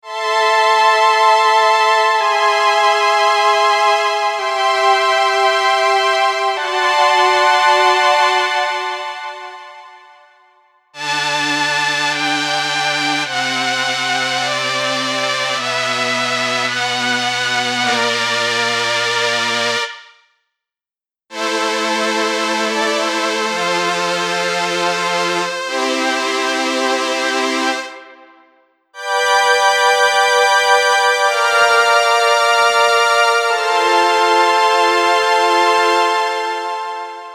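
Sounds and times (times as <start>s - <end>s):
brass: 0.0s - 20.2s, 21.3s - 37.3s
strings: 0.1s - 19.9s, 29.0s - 37.3s.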